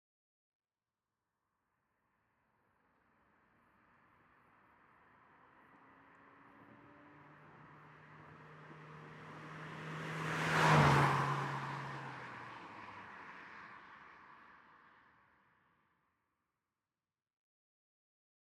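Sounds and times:
Ford Mondeo car driving by at 40mph: 5.4s - 14.4s.

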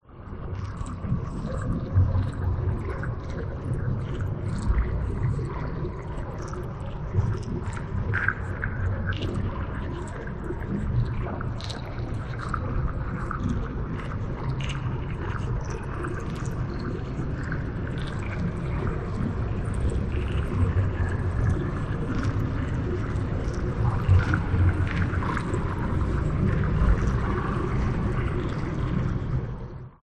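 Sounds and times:
underwater trickling crumble: 0.1s - 30.0s
eerie ghostly flowing underwater drone: 12.6s - 29.8s.

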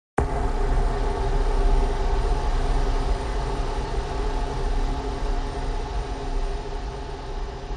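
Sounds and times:
deep dark resonating horror hit with low-frequency effects: 0.2s - 7.6s.

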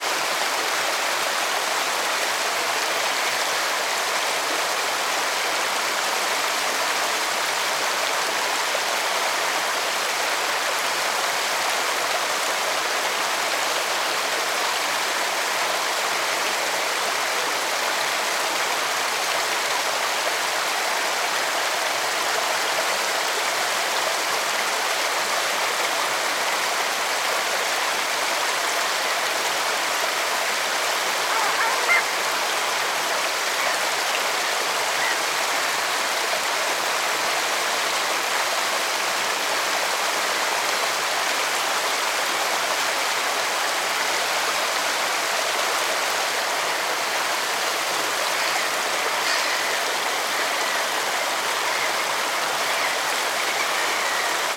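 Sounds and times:
fast shallow river flowing: 0.0s - 54.5s
birds: 31.2s - 32.8s, 48.2s - 54.5s.

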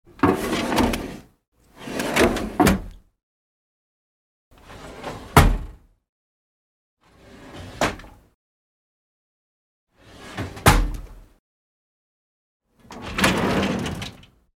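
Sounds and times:
household cabinet drawer opening and closing: 0.1s - 3.0s, 4.6s - 5.8s, 7.1s - 8.2s, 10.0s - 11.2s, 12.8s - 14.5s.

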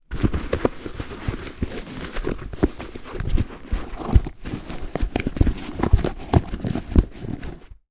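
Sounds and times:
work boot shoe handling: 0.0s - 7.8s.

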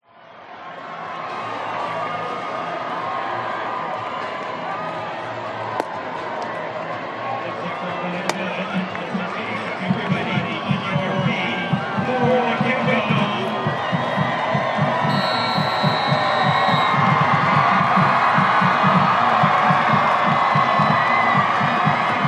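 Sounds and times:
crowd cheering at American football match kick off: 0.0s - 22.2s
announcer speaking at American football match: 7.4s - 13.7s
drums at American football match: 9.8s - 22.2s
referee whistle at American football match: 14.8s - 17.5s.

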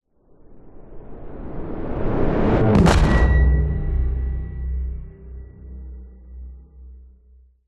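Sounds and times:
whoosh: 0.8s - 6.6s
dark science fiction drone: 1.7s - 7.4s
impact hit: 2.6s - 7.0s.

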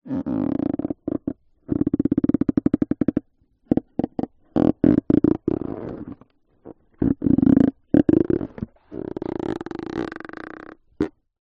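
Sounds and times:
partially inflated balloon creaking and squeaking when handled: 0.1s - 11.2s.

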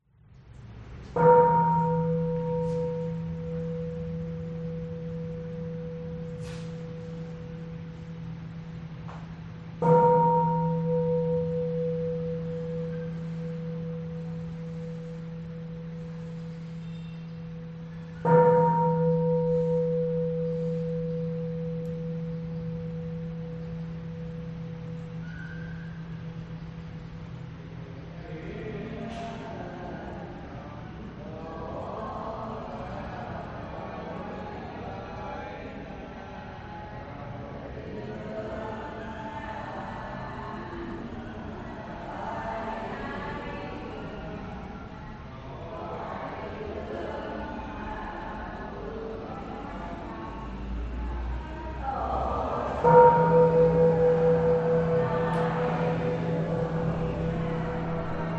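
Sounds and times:
prayer inside a Caodaist church in Vietnam: 0.6s - 58.3s
bell inside a Caodaist church in Vietnam: 1.0s - 27.9s, 51.5s - 58.3s.

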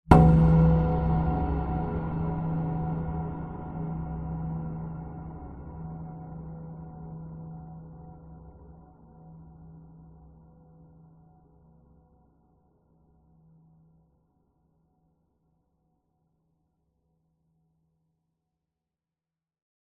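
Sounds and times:
dark reverberant cinematic hit: 0.1s - 8.2s.

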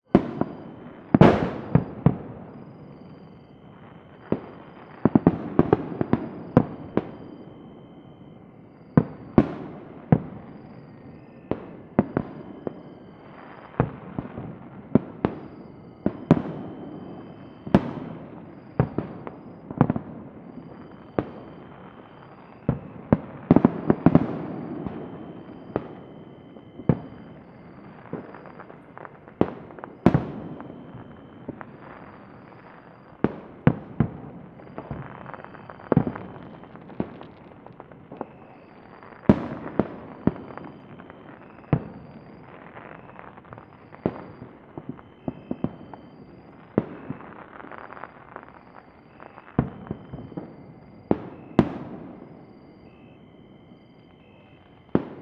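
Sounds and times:
distant New Year's Eve fireworks in Mexico: 0.0s - 55.1s.

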